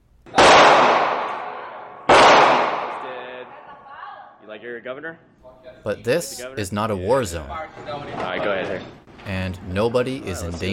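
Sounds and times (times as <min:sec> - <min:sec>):
loud gunshots with long rumbling echo: 0:00.3 - 0:03.3
speech: 0:04.5 - 0:10.7.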